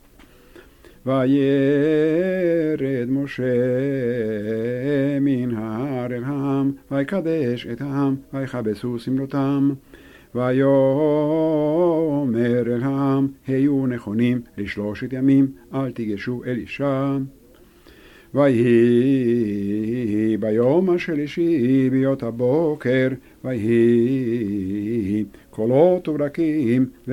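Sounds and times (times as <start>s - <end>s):
person reciting a scripture reading: 0.9s - 17.6s, 18.3s - 27.1s.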